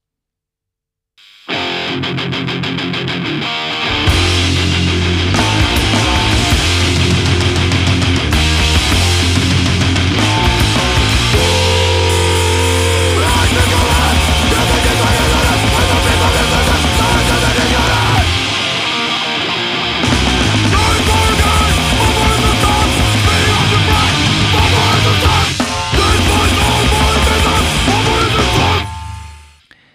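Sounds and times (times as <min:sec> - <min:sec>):
heavily distorted guitars in a noise-rock track: 0:01.2 - 0:29.7
thick low-end roaring in a noise-rock track: 0:04.1 - 0:18.9, 0:20.0 - 0:29.4
pounding drums in a noise-rock track: 0:05.3 - 0:19.0, 0:20.1 - 0:29.0.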